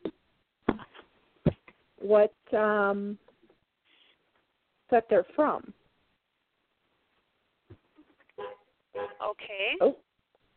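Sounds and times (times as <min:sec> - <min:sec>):
speech: 0:02.1 - 0:03.2, 0:04.9 - 0:05.8, 0:09.4 - 0:10.0
car horn honking outside: 0:08.4 - 0:09.4.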